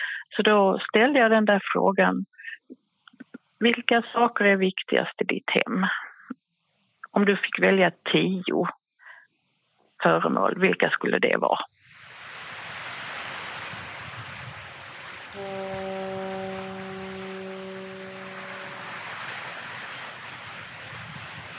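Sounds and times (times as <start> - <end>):
speech: 0.3 - 2.8, 3.6 - 6.0, 7.1 - 8.8, 10.0 - 11.8
surf: 11.7 - 21.5
rushing wind: 11.8 - 21.5
foghorn blast over the sea: 15.2 - 21.4.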